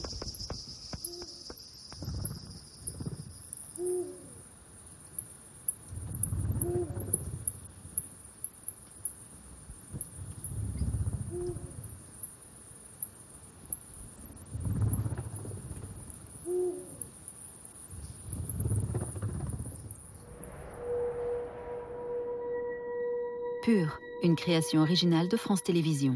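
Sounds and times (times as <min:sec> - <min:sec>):
bat echolocation calls slowed into audible range: 0:00.0 - 0:20.4
sustained tone: 0:20.2 - 0:26.1
speech: 0:23.7 - 0:26.1.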